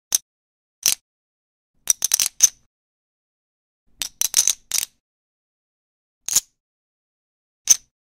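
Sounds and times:
poker chip: 0.8s - 1.0s, 1.8s - 2.7s, 3.9s - 5.0s, 6.3s - 6.6s, 7.7s - 7.9s.

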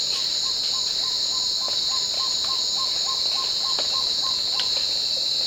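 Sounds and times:
black-tailed trogon: 0.1s - 5.3s.

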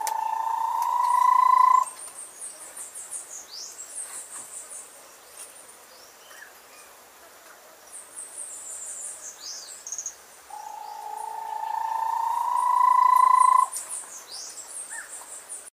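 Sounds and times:
Bahia tapaculo long rising trill: 0.0s - 2.0s, 10.6s - 13.8s.

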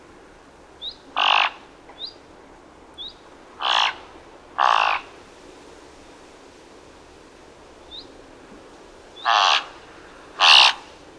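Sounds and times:
thick-billed raven cawing: 1.1s - 1.7s, 3.6s - 5.2s, 9.2s - 11.0s.

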